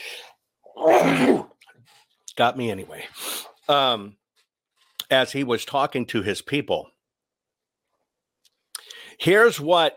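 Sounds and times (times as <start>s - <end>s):
sneeze: 0.8s - 1.6s
speech: 0.8s - 4.2s, 5.1s - 6.9s, 9.2s - 9.9s.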